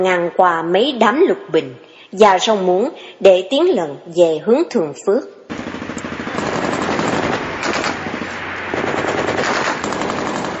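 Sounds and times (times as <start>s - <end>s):
speech: 0.0s - 5.4s
rapid automatic gunfire from the direction of a canal: 5.5s - 10.5s.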